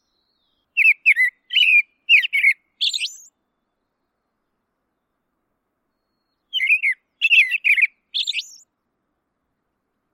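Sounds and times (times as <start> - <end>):
songbird singing warbled slurred phrases ending in a thin upward whistle: 0.0 - 3.3, 5.9 - 8.6.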